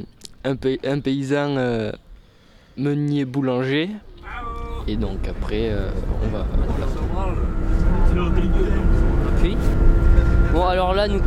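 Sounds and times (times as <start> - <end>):
speech: 0.0 - 2.0, 2.8 - 11.2
voices of bus passengers talking: 4.0 - 11.2
faint whine: 4.1 - 11.2
low engine rumble inside a moving bus: 4.2 - 11.2
road drone inside a moving bus: 4.2 - 11.2.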